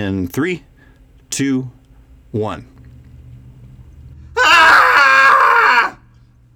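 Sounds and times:
speech: 0.0s - 0.7s, 1.3s - 2.7s
group of people screaming cathartically together: 4.4s - 6.0s.

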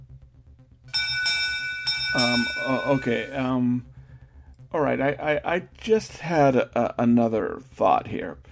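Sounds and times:
ship's bell ringing in a sealed room underground: 0.9s - 3.6s
speech: 2.1s - 3.9s, 4.7s - 8.4s.

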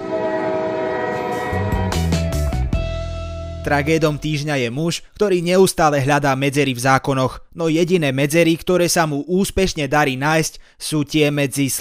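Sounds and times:
train horn blaring: 0.0s - 2.9s
speech: 3.6s - 11.8s.

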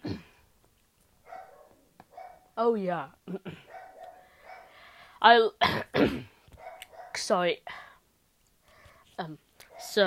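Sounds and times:
dog barking: 1.2s - 2.5s, 3.7s - 4.8s, 6.6s - 7.2s, 9.6s - 10.0s
speech: 2.6s - 3.6s, 5.2s - 6.3s, 7.3s - 7.8s, 9.2s - 10.0s.

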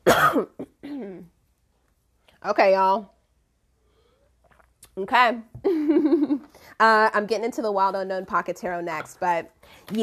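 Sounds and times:
loud harsh cough: 0.0s - 1.3s
speech: 0.1s - 0.6s, 2.4s - 3.2s, 5.0s - 10.0s.

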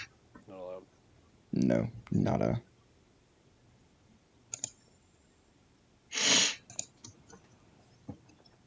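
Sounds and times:
speech: 0.5s - 2.7s
person sneezing: 6.1s - 6.6s.

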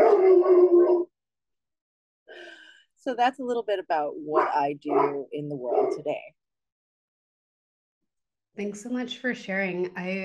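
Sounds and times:
dog barking loudly: 0.0s - 1.1s, 4.4s - 6.1s
speech: 3.0s - 6.4s, 8.6s - 10.2s.

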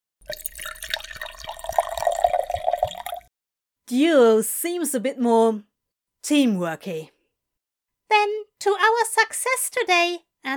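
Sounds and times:
liquid pouring into a glass: 0.2s - 3.3s
speech: 3.9s - 7.2s, 8.1s - 10.5s.

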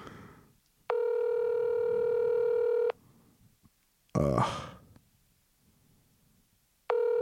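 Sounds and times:
telephone line tone as a call is placed: 0.9s - 3.0s, 6.9s - 7.1s.

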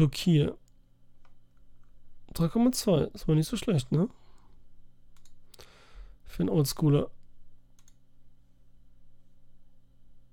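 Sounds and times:
speech: 0.0s - 0.6s, 2.3s - 4.2s, 6.3s - 7.2s
steady low electrical hum: 0.0s - 10.3s
computer mouse or keys clicking: 5.1s - 5.6s, 7.2s - 8.0s.

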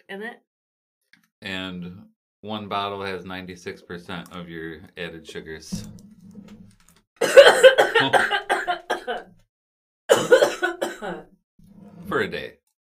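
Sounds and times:
speech: 0.1s - 0.5s, 1.4s - 6.1s, 7.6s - 8.4s, 12.1s - 12.6s
person coughing hard in a coughing fit: 7.2s - 9.3s, 10.1s - 11.3s.

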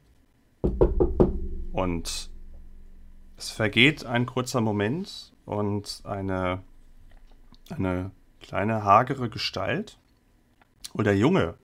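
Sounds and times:
firm knocks on a large heavy sliding door: 0.6s - 3.7s
speech: 1.8s - 2.3s, 3.4s - 6.7s, 7.7s - 10.0s, 10.8s - 11.6s.

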